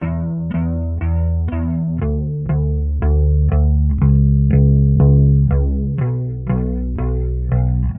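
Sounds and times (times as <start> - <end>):
phonk bass loop: 0.0 - 7.9.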